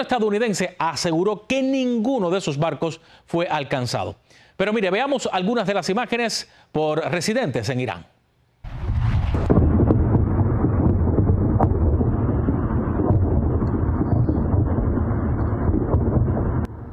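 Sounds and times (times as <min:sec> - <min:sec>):
speech: 0:00.0 - 0:08.1
deep booming explosion at a pier on an island: 0:08.6 - 0:16.9
sharp cracks: 0:08.6 - 0:16.9.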